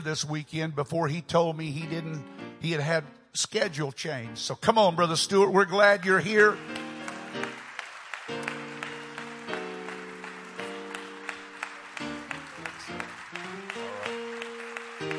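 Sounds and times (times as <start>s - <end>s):
speech: 0.0s - 7.5s
sustained organ chords: 0.0s - 15.1s
audience clapping: 5.8s - 15.1s.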